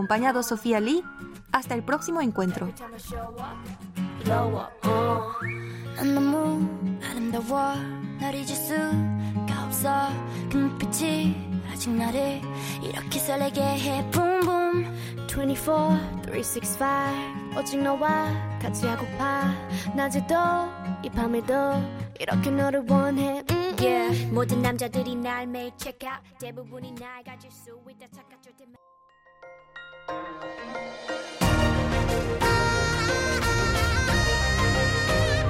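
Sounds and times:
speech: 0:00.0 - 0:28.8, 0:30.1 - 0:31.3
K-pop song with a whistled melody over a driving beat: 0:00.0 - 0:35.4.

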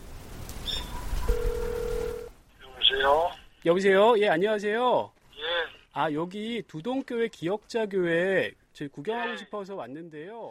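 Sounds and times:
brief crackle as the phone line connects: 0:00.0 - 0:03.8, 0:04.8 - 0:08.0
steady electronic ringback tone: 0:01.3 - 0:02.3
speech: 0:03.1 - 0:05.2, 0:06.0 - 0:10.5.

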